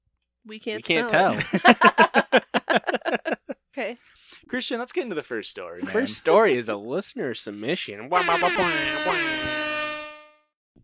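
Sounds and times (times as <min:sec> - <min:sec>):
speech: 0:00.4 - 0:02.5, 0:03.8 - 0:09.8
laughter: 0:00.8 - 0:03.6, 0:05.8 - 0:06.2
air horn sound effect blasts: 0:08.1 - 0:10.6.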